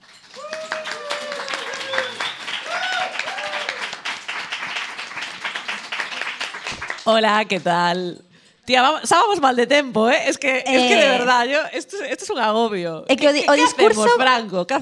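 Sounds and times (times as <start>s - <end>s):
audience at a show applauding: 0.0s - 7.1s
audience whooping and cheering: 0.2s - 4.7s
speech: 7.1s - 14.8s.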